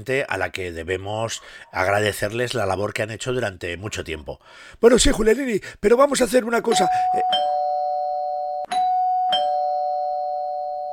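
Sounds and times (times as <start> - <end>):
speech: 0.0 - 7.6
doorbell ringing with sustained electronic tone: 6.7 - 10.9.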